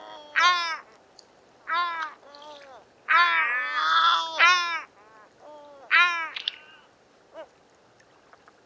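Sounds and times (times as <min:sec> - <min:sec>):
immature Yellow-legged gull giving plaintive calls: 0:00.0 - 0:00.9, 0:01.7 - 0:07.5.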